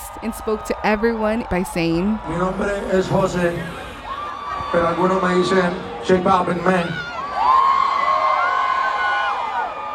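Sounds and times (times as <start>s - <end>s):
huge festival crowd cheering for the closing headliner: 0.0s - 9.9s
speech: 0.2s - 3.8s, 4.7s - 7.1s
high whoops from festival crowd: 7.0s - 9.9s.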